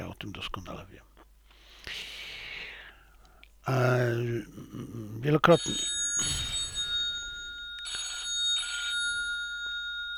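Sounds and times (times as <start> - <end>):
speech: 0.4 - 0.8, 3.7 - 6.4
telephone ringing in short buzzy bursts: 5.4 - 10.1.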